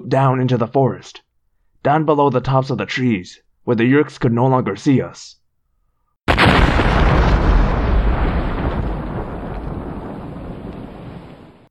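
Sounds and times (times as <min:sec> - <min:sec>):
speech: 0:00.1 - 0:01.2, 0:01.8 - 0:05.4
explosion with deep rumbling roar: 0:06.3 - 0:11.6.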